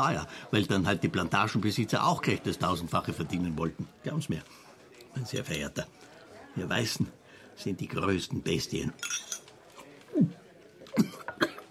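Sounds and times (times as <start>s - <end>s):
speech: 0.0s - 4.6s, 5.2s - 9.3s, 10.1s - 11.5s
faint clatter: 0.0s - 11.7s
harsh hacking coughs after choking on food: 11.0s - 11.7s.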